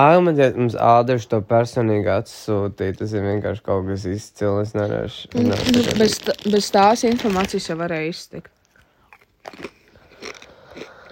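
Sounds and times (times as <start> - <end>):
speech: 0.0 - 8.6, 9.4 - 10.9
crunching potato chips while eating: 5.4 - 7.7, 9.1 - 11.1.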